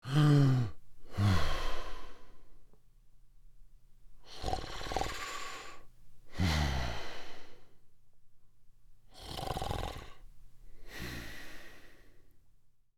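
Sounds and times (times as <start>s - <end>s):
man snoring loudly while sleeping: 0.0s - 1.8s, 4.2s - 5.8s, 9.1s - 10.2s.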